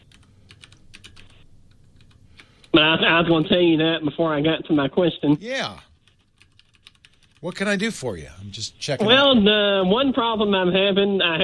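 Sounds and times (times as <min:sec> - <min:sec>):
typing on a computer keyboard: 0:00.0 - 0:02.8, 0:05.9 - 0:07.5
speech: 0:02.8 - 0:05.9, 0:07.4 - 0:11.4.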